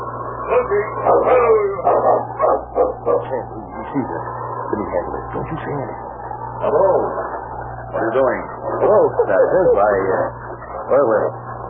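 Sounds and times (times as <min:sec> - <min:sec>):
low steady hum: 0:00.0 - 0:11.6
speech: 0:00.6 - 0:02.3, 0:03.3 - 0:11.4
sled dog team barking and yipping: 0:01.0 - 0:03.4.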